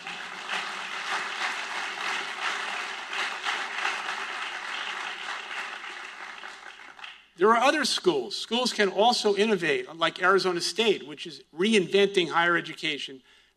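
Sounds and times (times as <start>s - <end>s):
sizable audience applauding: 0.0s - 7.2s
speech: 7.4s - 13.4s.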